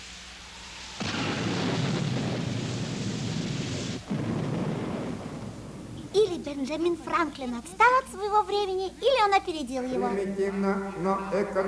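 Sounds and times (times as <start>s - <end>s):
loud thunder rumble from a thunderstorm: 1.0s - 7.6s
speech: 6.4s - 11.6s.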